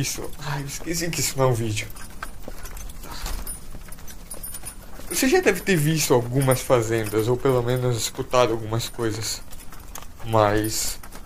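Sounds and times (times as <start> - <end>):
speech: 0.0 - 2.2, 5.1 - 9.5, 10.2 - 11.0
hooves clip-clopping from a horse-drawn cart: 0.0 - 11.2.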